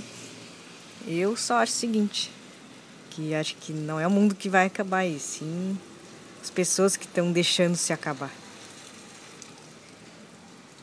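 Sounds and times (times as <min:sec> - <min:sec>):
steady rain falling: 0:00.0 - 0:10.8
speech: 0:01.0 - 0:02.4, 0:03.2 - 0:08.4.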